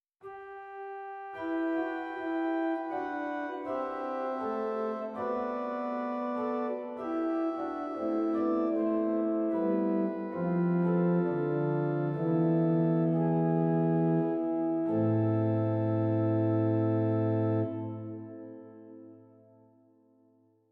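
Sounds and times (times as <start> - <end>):
pipe organ Great manual Octave 8 stop in Zwolle: 1.2 - 19.1.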